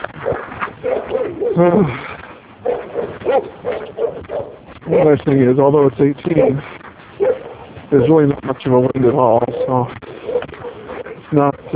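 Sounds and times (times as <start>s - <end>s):
several dogs barking and yelping: 0.0s - 2.0s, 2.6s - 5.3s, 6.2s - 8.1s, 9.0s - 11.7s
speech: 1.6s - 2.1s, 5.0s - 6.8s, 7.9s - 10.1s, 11.3s - 11.7s.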